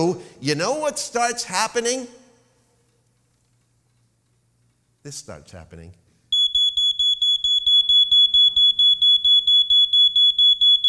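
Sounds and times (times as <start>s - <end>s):
speech: 0.0s - 2.2s, 5.0s - 6.0s
shrill electronic alarm beeping: 6.3s - 10.8s.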